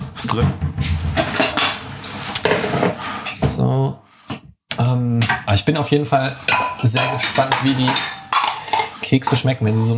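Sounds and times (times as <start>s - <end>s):
speech: 0.3s - 0.7s, 3.7s - 4.1s, 5.5s - 8.1s, 9.1s - 9.9s
cutlery and dishes clattering as they are unloaded from dishwasher: 1.1s - 3.0s, 6.4s - 9.9s.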